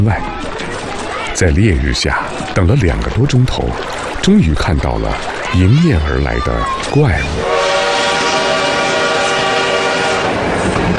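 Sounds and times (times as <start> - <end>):
speech: 0.0 - 0.4, 1.4 - 7.6
steam locomotive on the Hangzhou–Jiaxing railway in China rumbling: 0.0 - 10.9
long steady steam locomotive horn blast: 7.4 - 10.6.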